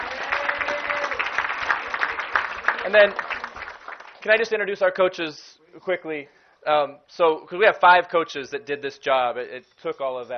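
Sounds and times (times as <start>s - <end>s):
audience applause at a ceremony: 0.0s - 4.4s
speech: 2.9s - 3.2s, 4.2s - 10.3s.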